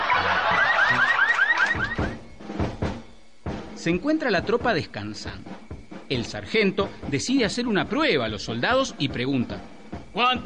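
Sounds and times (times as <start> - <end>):
car alarm: 0.0 - 2.2
speech: 3.8 - 10.4.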